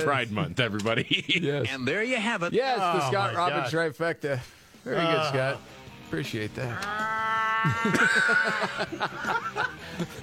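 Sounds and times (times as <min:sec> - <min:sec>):
speech: 0:00.0 - 0:10.2
laughter: 0:00.8 - 0:01.8, 0:07.4 - 0:10.2
voices imitating mating cats yowling and wailing: 0:06.7 - 0:08.7.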